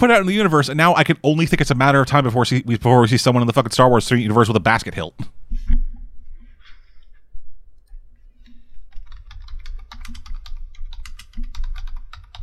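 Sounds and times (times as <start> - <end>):
speech: 0.0 - 5.4
light typing on a computer keyboard: 8.9 - 12.4.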